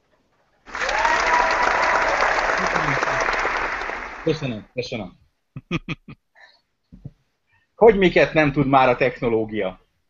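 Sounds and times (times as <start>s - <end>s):
crowd applause: 0.7s - 4.6s
laughter: 2.6s - 3.4s, 5.6s - 6.2s
speech: 4.2s - 6.2s, 7.8s - 9.8s.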